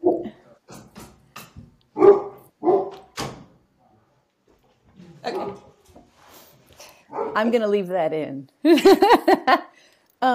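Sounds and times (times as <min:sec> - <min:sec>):
Rhodesian Ridgeback barking: 0:02.0 - 0:03.2, 0:05.2 - 0:05.8, 0:07.1 - 0:07.4
speech: 0:07.4 - 0:10.3
laughter: 0:08.7 - 0:09.6.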